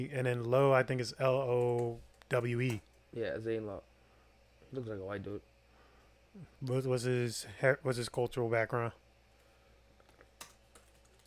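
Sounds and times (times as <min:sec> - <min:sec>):
speech: 0:00.0 - 0:03.9, 0:04.7 - 0:05.5, 0:06.4 - 0:09.0
faint steady hum: 0:00.0 - 0:11.2
keyboard typing clicks: 0:10.0 - 0:11.2.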